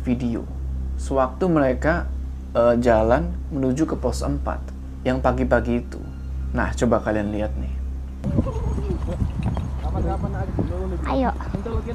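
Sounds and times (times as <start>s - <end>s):
speech: 0.1s - 9.4s, 10.0s - 11.9s
indistinct voices: 2.6s - 11.9s
horse hooves clip-clopping: 8.3s - 11.9s.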